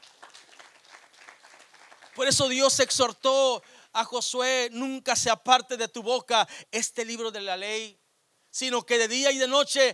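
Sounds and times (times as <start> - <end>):
audience applauding: 0.0 - 2.7
speech: 2.2 - 9.9.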